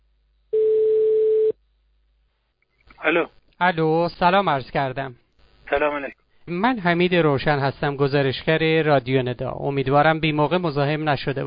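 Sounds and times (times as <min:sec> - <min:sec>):
incoming telephone call ringing beep: 0:00.6 - 0:01.6
speech: 0:03.1 - 0:11.4.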